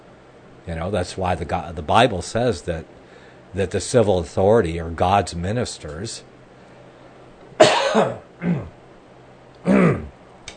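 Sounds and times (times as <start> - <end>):
speech: 0.7 - 6.3, 7.9 - 8.7
dry cough caused by dry mouth: 7.6 - 8.8, 9.6 - 10.1
throat clearing: 7.6 - 8.8, 9.6 - 10.2.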